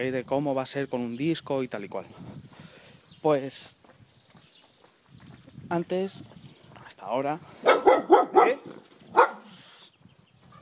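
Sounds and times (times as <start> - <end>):
speech: 0.0 - 2.4, 3.2 - 3.8, 5.7 - 6.4, 7.0 - 8.7
dog barking behind a fence: 7.6 - 9.5
hiss: 9.4 - 10.0.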